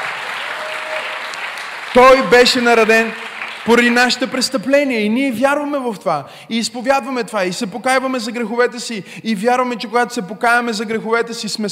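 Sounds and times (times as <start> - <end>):
audience applauding: 0.0 - 4.4
speech: 2.0 - 11.6.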